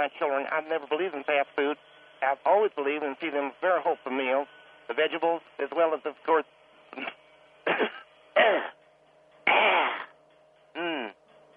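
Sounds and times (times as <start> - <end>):
speech: 0.0 - 8.6
faint steady hum: 0.0 - 11.5
person clearing throat with something stuck in the back of the throat: 7.0 - 8.8, 9.5 - 10.1, 10.8 - 11.2.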